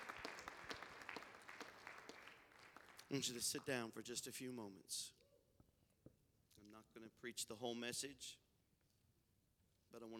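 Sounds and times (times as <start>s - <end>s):
crowd clapping hands in praise: 0.0s - 3.8s
speech: 3.1s - 5.2s, 6.8s - 8.4s, 9.9s - 10.1s.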